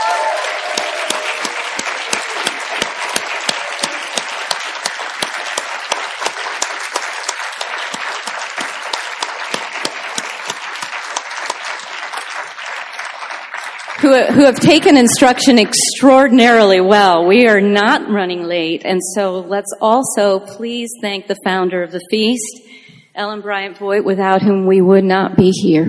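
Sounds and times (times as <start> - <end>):
audience applauding readers at a reading event: 0.0 - 15.8
speech: 14.1 - 22.6, 23.2 - 25.8.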